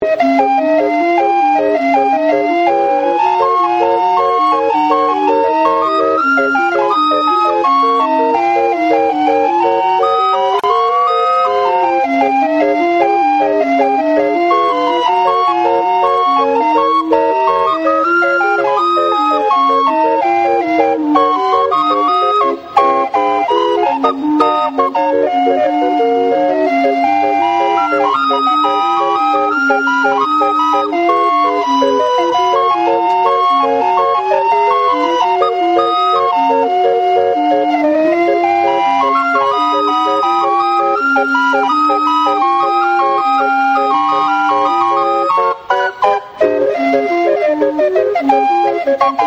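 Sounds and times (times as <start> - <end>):
calliope: 0.0 - 49.2.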